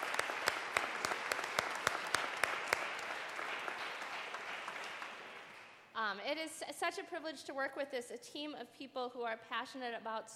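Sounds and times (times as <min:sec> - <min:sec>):
audience applauding: 0:00.0 - 0:05.8
speech: 0:06.3 - 0:10.3.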